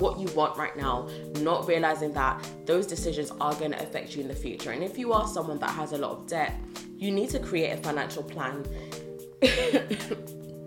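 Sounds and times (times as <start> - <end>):
speech: 0.0 - 10.4
person coughing: 9.4 - 10.3.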